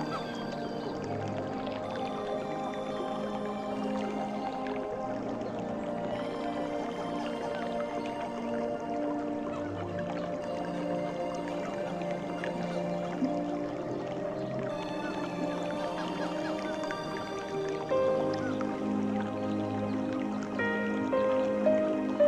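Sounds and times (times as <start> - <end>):
faint trickling water: 0.0 - 22.2
soft sustained music with mellow held tones: 0.0 - 22.2.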